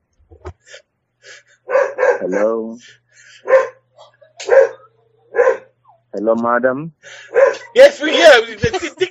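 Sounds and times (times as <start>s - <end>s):
dog barking: 1.7s - 2.6s, 3.4s - 3.8s, 4.4s - 5.8s, 7.3s - 7.8s
speech: 2.2s - 3.6s, 6.2s - 7.1s, 7.8s - 8.9s
laughter: 7.5s - 9.0s.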